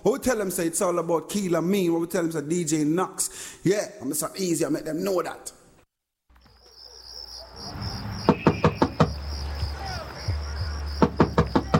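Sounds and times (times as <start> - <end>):
speech: 0.0 - 5.6
chorus of crickets chirping: 6.4 - 11.7
firm knocking on a door: 8.2 - 9.2, 11.0 - 11.7.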